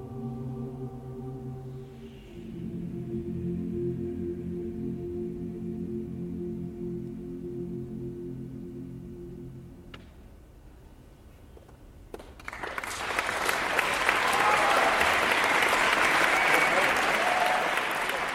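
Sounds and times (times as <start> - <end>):
faint lingering low tones: 0.0 - 11.6
large concert audience applause: 12.4 - 18.3.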